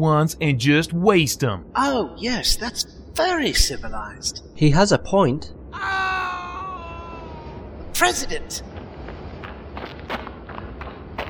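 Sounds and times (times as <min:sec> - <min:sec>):
speech: 0:00.0 - 0:06.0, 0:08.0 - 0:08.7
running footsteps: 0:08.7 - 0:11.2.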